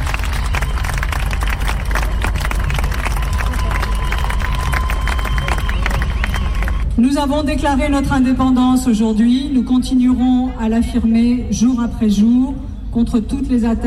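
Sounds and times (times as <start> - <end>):
large crowd at a march gathering applauding: 0.0 - 6.9
speech: 7.1 - 13.8.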